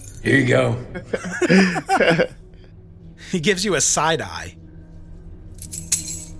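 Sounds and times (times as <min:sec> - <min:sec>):
metallic keys jingling while searching for them: 0:00.0 - 0:00.2, 0:05.6 - 0:06.3
speech: 0:00.2 - 0:02.4, 0:03.3 - 0:04.6
laughter: 0:00.7 - 0:02.4.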